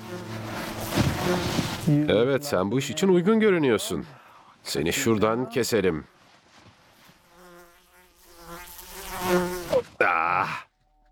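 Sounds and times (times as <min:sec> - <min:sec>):
fly buzzing close to the ear: 0:00.0 - 0:02.1, 0:07.0 - 0:09.9
speech: 0:01.3 - 0:06.2.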